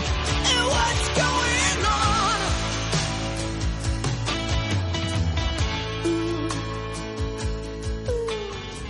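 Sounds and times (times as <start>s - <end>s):
rock guitars: 0.0s - 8.8s
steady rock drums: 0.0s - 8.8s
strong soaring female voice singing a rock song: 0.4s - 2.7s, 6.0s - 6.7s, 8.0s - 8.6s.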